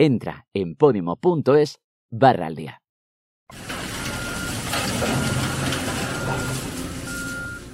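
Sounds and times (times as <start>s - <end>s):
speech: 0.0s - 2.8s
clattering machinery: 3.5s - 7.7s
diesel engines rumbling: 3.5s - 7.7s
heavy truck reversing beeps at an earthquake rubble site in Turkey: 3.5s - 7.7s.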